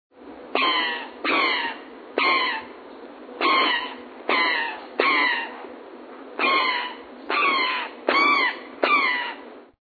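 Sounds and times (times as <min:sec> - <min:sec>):
Brown Jay calling: 0:00.5 - 0:02.8, 0:03.4 - 0:05.6, 0:06.4 - 0:09.5.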